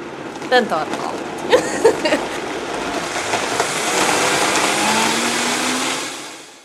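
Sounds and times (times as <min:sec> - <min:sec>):
speech: 0:00.5 - 0:02.4
powerful blender running: 0:01.4 - 0:06.6
laughter: 0:01.5 - 0:02.4.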